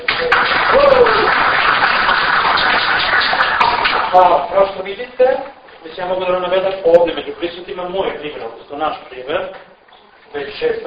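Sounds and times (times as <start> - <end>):
audience applause: 0.1 - 4.1
speech: 4.1 - 9.7, 10.3 - 10.8.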